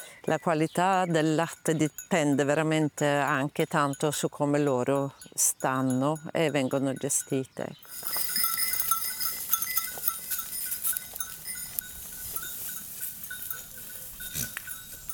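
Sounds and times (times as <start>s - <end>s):
Camosciata delle Alpi goat bells clinking on a farm: 0.0s - 15.1s
speech: 0.2s - 8.3s
Camosciata delle Alpi goats bleating on a farm: 8.0s - 15.1s.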